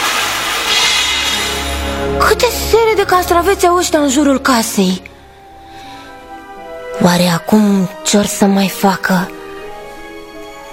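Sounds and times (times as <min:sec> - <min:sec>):
glass breaking: 0:00.0 - 0:01.6
speech: 0:02.3 - 0:05.1, 0:07.0 - 0:09.4.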